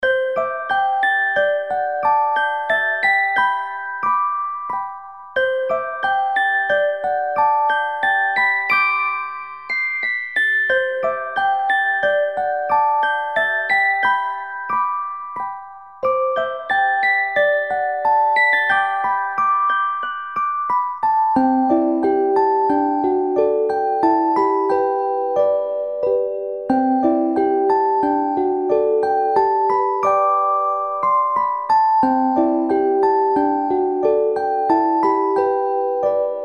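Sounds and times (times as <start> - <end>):
music box lullaby: 0.0 - 36.4.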